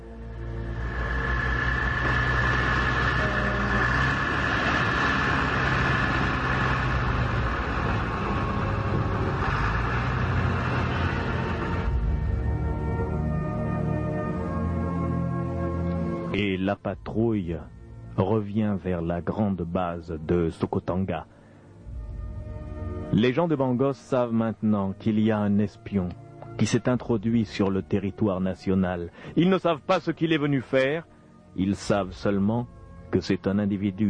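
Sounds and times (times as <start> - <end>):
truck engine of a patrol convoy roaring as it sets off: 0.0 - 16.4
speech: 16.8 - 21.4, 23.1 - 34.0.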